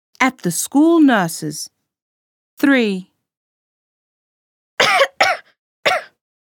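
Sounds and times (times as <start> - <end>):
speech: 0.2 - 1.8, 2.6 - 3.1
person coughing harshly: 4.8 - 6.2.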